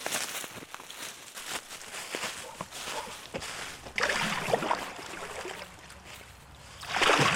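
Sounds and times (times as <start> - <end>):
kayak paddle strokes splashing on the Wieprz river in Lublin province Poland: 3.7 - 6.1, 6.8 - 7.3
steady watery wash of the Wieprz river: 3.8 - 6.1, 6.7 - 7.3.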